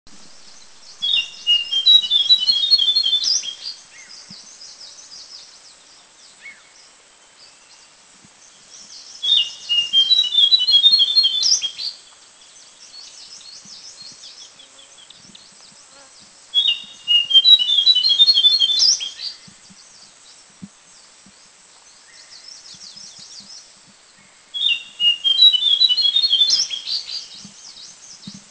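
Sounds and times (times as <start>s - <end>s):
Rusty-bellied Shortwing in Mishmi India: 0.5s - 4.5s, 8.8s - 12.1s, 13.0s - 19.8s, 24.2s - 28.4s.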